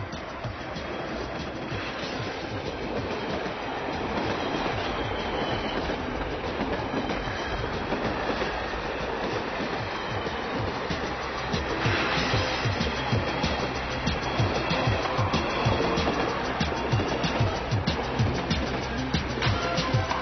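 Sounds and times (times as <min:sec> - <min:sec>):
train rolling along the rails: 0:00.0 - 0:20.2.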